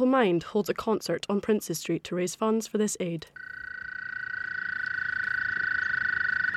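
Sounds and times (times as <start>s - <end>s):
speech: 0.0s - 3.6s
dense chorus of frogs trilling: 3.4s - 6.5s.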